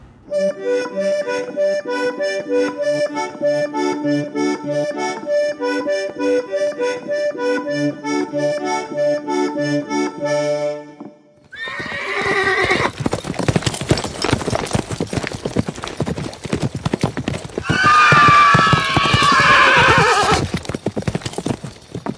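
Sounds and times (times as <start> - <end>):
horse hoofbeats clip-clopping: 0.3 - 22.1
horse whinnying loudly: 11.5 - 13.0, 17.6 - 20.5.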